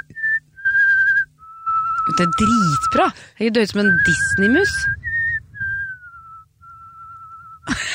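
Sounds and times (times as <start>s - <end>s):
person whistling a slow melody with vibrato: 0.0s - 3.1s, 3.8s - 7.7s
low rumble: 0.0s - 7.9s
speech: 2.2s - 5.0s
burst of rough noise: 4.2s - 6.5s.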